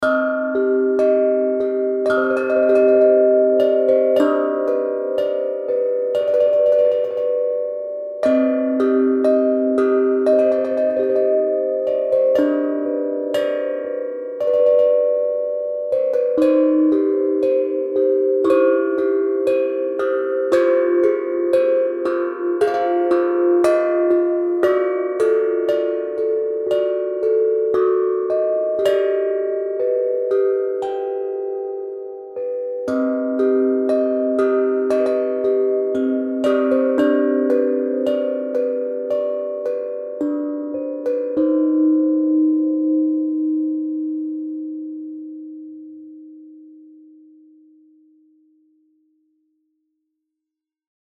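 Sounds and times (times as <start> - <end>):
tongue drums played gently: 0.0 - 48.4.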